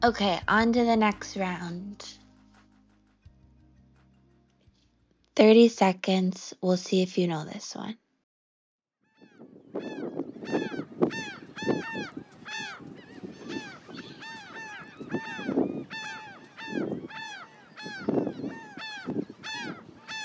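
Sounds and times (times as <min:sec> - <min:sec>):
speech: 0:00.0 - 0:02.2, 0:05.4 - 0:08.0, 0:09.7 - 0:10.7
low rumble of wind buffeting: 0:09.2 - 0:20.2
noisy flock of seabirds honking and squawking: 0:09.2 - 0:20.2.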